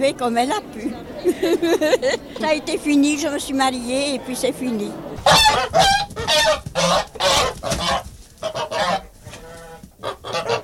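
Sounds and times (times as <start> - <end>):
speech: 0.0 - 7.0
laughter: 0.5 - 3.5
flock of geese honking: 4.9 - 10.6.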